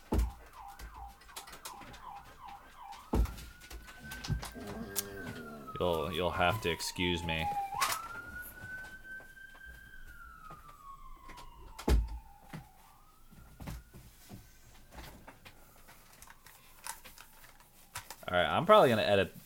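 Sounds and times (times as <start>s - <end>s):
ambulance siren passing: 0.0s - 17.8s
speech: 5.8s - 7.7s, 18.7s - 19.4s.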